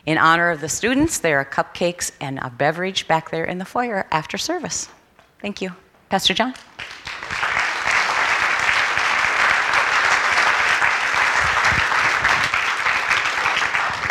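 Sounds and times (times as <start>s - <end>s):
speech: 0.0s - 7.0s
audience applauding: 6.8s - 14.0s.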